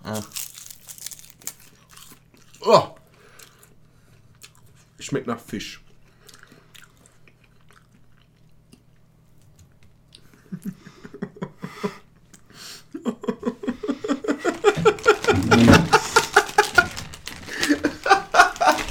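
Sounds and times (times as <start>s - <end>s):
person chewing a crispy snack: 0.0s - 4.9s, 5.9s - 10.3s
speech: 0.1s - 0.5s, 2.6s - 3.0s, 5.1s - 5.8s
laughter: 10.5s - 12.0s, 13.0s - 18.9s.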